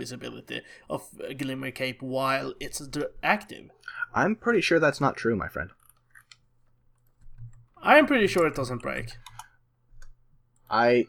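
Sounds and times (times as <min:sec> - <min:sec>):
speech: 0:00.0 - 0:05.8, 0:07.8 - 0:09.3, 0:10.7 - 0:11.0
typing on a computer keyboard: 0:07.3 - 0:10.2.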